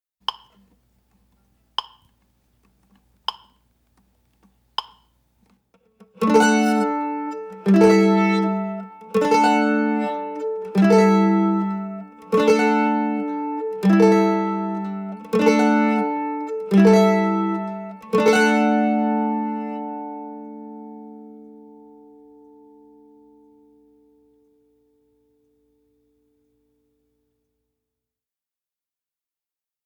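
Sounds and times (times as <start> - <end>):
simple strumming of chords: 6.0 - 24.8.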